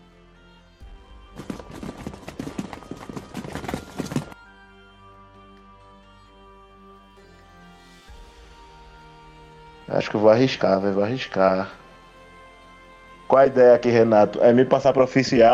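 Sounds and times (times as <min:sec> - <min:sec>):
rapid clattering footsteps: 0:01.3 - 0:04.4
speech: 0:09.9 - 0:11.8, 0:13.3 - 0:15.5.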